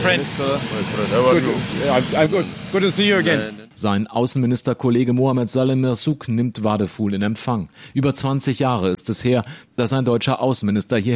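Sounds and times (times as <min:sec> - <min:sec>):
airplane engines roaring on arrival in Nouakchott, Mauritania: 0:00.0 - 0:03.8
speech: 0:00.1 - 0:11.1.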